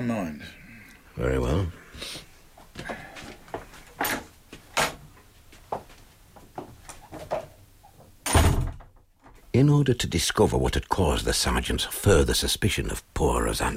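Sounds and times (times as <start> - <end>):
speech: 0.0 - 0.6, 1.2 - 3.0, 9.6 - 13.7
heavy door thud: 8.2 - 9.0
door pushed shut: 8.3 - 8.9.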